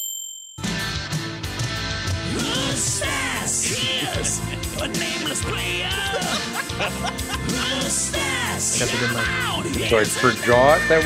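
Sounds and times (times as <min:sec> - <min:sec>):
bright bell ding with a sustained metallic tone: 0:00.0 - 0:00.6
full busy music: 0:00.6 - 0:11.0
laughter: 0:02.3 - 0:11.0
speech: 0:02.8 - 0:11.0.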